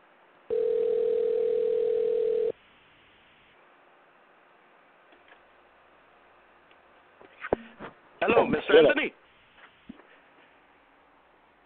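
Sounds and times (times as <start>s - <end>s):
telephone tone beep as a call is placed: 0.5s - 2.5s
faint hiss: 2.5s - 4.0s, 9.1s - 11.6s
speech: 8.8s - 9.2s.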